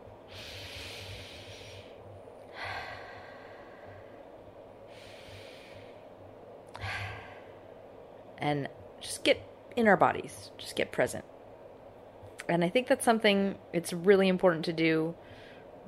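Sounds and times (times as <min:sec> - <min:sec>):
low steady hum: 0:00.0 - 0:15.8
slow deep breathing as a guided relaxation exercise: 0:00.2 - 0:07.9
speech: 0:08.4 - 0:11.3, 0:12.5 - 0:15.2.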